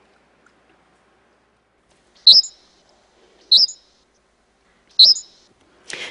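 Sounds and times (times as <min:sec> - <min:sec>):
high-pitched bird chirps from a birdsong recording: 0:02.2 - 0:02.8, 0:03.4 - 0:04.0, 0:04.9 - 0:05.5.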